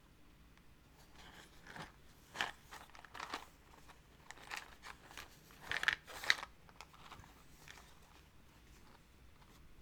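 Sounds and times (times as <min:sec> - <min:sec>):
wooden matches rattling and scraping inside a small cardboard box: 0:01.1 - 0:08.1.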